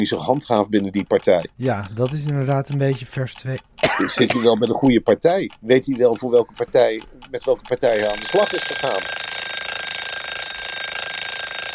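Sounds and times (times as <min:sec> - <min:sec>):
speech: 0:00.0 - 0:09.2
alarm clock ringing: 0:07.8 - 0:11.7.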